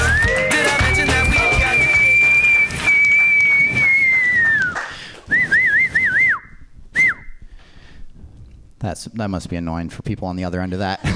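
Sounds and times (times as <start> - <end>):
comedian whistling into a microphone at a comedy show: 0.0 - 7.4
speech: 9.0 - 11.1.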